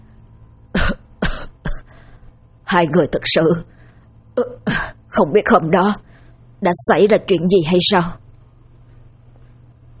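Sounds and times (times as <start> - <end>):
man coughing violently: 0.8 - 1.9
speech: 2.7 - 3.8, 4.4 - 8.2.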